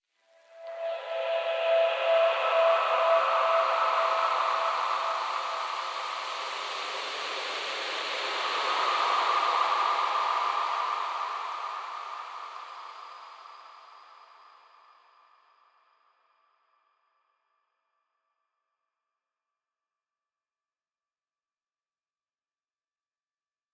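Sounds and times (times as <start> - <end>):
atmospheric music at 140 BPM in E: 0.4 - 12.4.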